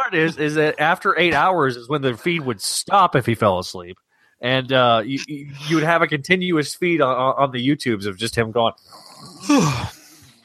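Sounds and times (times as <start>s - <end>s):
speech: 0.1s - 10.0s
person yawning: 9.3s - 10.3s.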